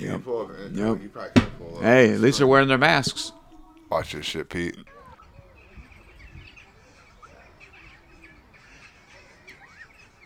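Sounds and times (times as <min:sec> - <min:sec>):
speech: 0:00.0 - 0:05.0
seagull squawking while attacked by monkey: 0:04.9 - 0:10.2.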